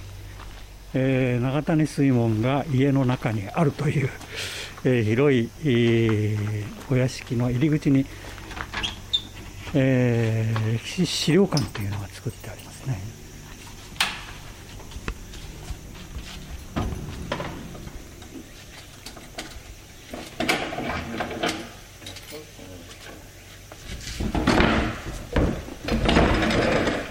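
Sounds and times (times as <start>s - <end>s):
speech: 0.9s - 8.3s, 9.7s - 13.2s
heavy wooden door of a history museum in Japan hauled open: 14.0s - 21.9s, 24.1s - 27.0s.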